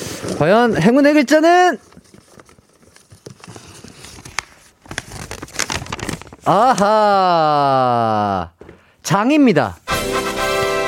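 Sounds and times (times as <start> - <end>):
paper slips bearing letters rustling and crinkling as they are shuffled: 0.0 - 7.1
speech: 0.2 - 1.9, 6.4 - 10.3.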